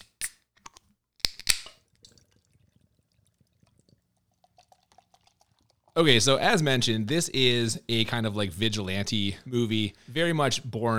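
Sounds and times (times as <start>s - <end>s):
can of rhubarb beer cracking open: 0.0s - 6.1s
rhubarb beer trickling and fizzing as it is poured: 1.6s - 7.8s
speech: 6.0s - 10.9s.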